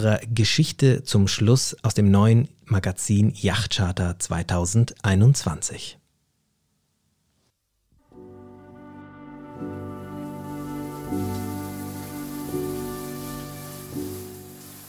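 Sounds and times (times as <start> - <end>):
speech: 0.0 - 6.0
soft sustained musical chords: 8.0 - 14.0
rain-shower water drops pattering onto a person's face: 9.7 - 14.8.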